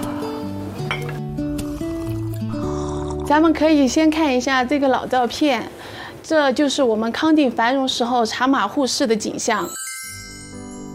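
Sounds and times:
steady music: 0.0 - 4.9, 9.6 - 10.9
glasses of black Tibetan tea clinking in a toast in a high-plateau region: 0.9 - 1.2
speech: 3.3 - 9.8.

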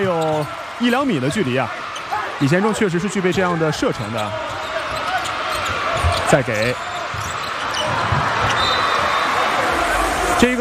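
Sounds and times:
loud crowd noise at a basketball game: 0.0 - 10.5
speech: 0.1 - 1.8, 2.4 - 4.7, 6.3 - 7.2, 10.4 - 10.5
basketball dribbled on court: 3.9 - 8.6.

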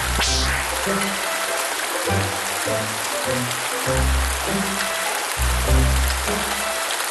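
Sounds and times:
low stepping melody of deep notes: 0.0 - 1.4, 3.3 - 6.7
heavy rain pouring down: 0.0 - 7.1
speech: 0.9 - 1.3, 2.7 - 5.0.

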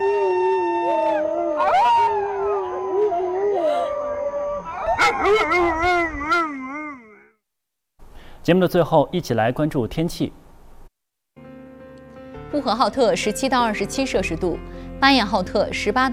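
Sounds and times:
excited Alaskan Malamute dog howling: 0.0 - 7.4
speech: 5.3 - 6.2, 8.5 - 10.4, 12.6 - 16.1.

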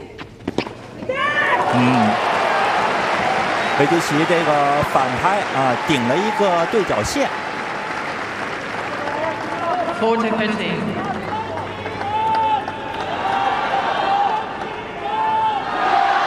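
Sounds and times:
large tennis stadium crowd roaring and cheering: 1.1 - 16.2
scattered applause: 2.0 - 14.8
speech: 3.8 - 7.4, 10.0 - 11.2.

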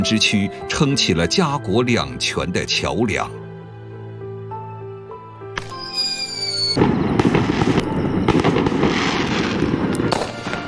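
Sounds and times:
speech: 0.0 - 3.4
festival fireworks bursting with crackles and pops: 5.6 - 10.6.

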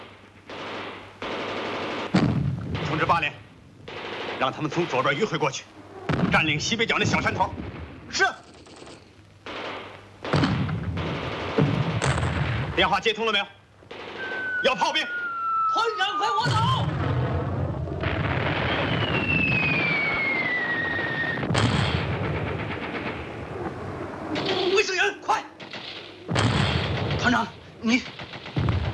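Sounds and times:
dense continuous enemy gunfire: 0.0 - 13.0, 13.9 - 24.9, 25.5 - 28.9
heavy booming artillery blasts: 0.5 - 8.4, 9.4 - 13.1, 13.9 - 24.9, 25.5 - 28.9
shrill whistling streak: 14.2 - 16.9, 18.6 - 21.4
voices shouting over the battle: 14.2 - 17.0.

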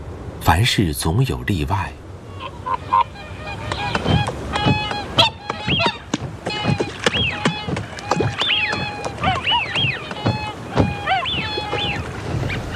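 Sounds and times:
speech: 0.5 - 2.0
soft water splashing: 2.0 - 12.7
flock of whooper swans honking in winter: 2.2 - 12.7
swan wings flapping: 2.7 - 12.7.

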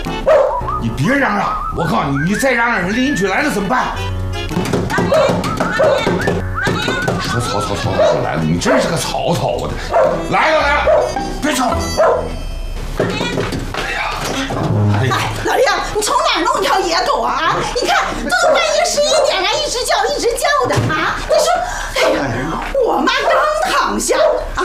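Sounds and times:
dog barking and yipping: 0.2 - 0.6, 5.0 - 6.3, 7.8 - 9.0, 9.9 - 11.2, 12.0 - 12.3, 18.3 - 19.6, 23.1 - 24.5
voices: 0.8 - 4.0, 4.9 - 12.1, 13.0 - 24.6
laughter: 4.9 - 9.0
dog whimpering: 5.1 - 6.4.

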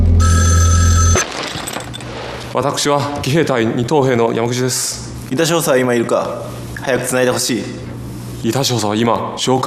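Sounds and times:
telephone bell ringing: 0.2 - 1.3
speech: 2.5 - 9.6.

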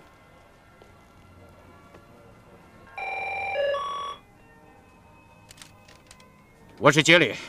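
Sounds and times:
telephone ringing with a bright electronic trill: 2.9 - 4.3
speech: 6.8 - 7.4.

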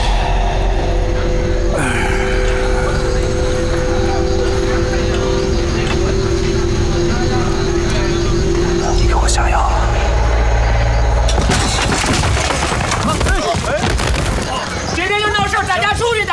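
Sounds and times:
low rumble: 0.0 - 13.4
loud crashes of a shop being smashed: 10.6 - 15.1
wood splintering: 11.3 - 15.7.

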